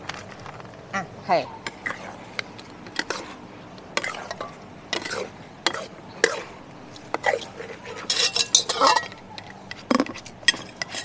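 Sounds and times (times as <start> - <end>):
speech: 1.3 - 1.6
utensils scraping and clinking: 1.7 - 3.4, 4.0 - 11.0
utensils tossing food with pork crackling in a bowl or pan: 4.0 - 11.0.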